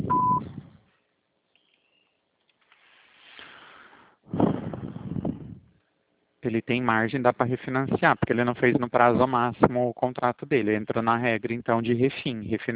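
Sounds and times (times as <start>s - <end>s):
voicemail beep on a phone line: 0.1s - 0.5s
hiss: 2.7s - 3.7s
speech: 6.4s - 12.7s.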